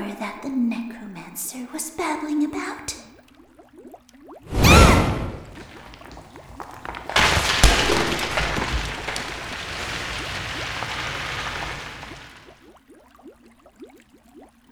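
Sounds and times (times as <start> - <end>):
speech: 0.2 - 3.0
magic fireball being thrown with a whooshing burst and roaring rush: 4.5 - 12.5.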